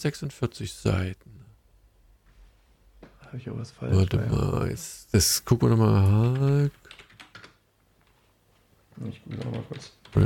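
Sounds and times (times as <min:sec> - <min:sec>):
speech: 0:00.0 - 0:01.4, 0:03.3 - 0:07.0, 0:09.0 - 0:10.2
typing on a computer keyboard: 0:06.2 - 0:08.2, 0:09.0 - 0:10.2.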